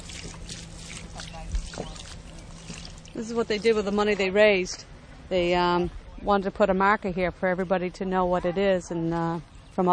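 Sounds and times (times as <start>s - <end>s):
water pouring from a watering can onto plants: 0.0s - 4.0s
speech: 3.2s - 9.9s.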